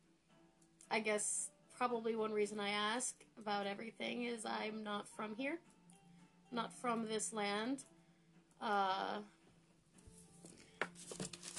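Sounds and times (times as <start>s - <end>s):
speech: 1.0s - 5.7s, 6.5s - 7.9s, 8.6s - 9.4s
paper rustling and crinkling: 10.8s - 11.5s
brief scrape-like burst: 10.9s - 11.5s.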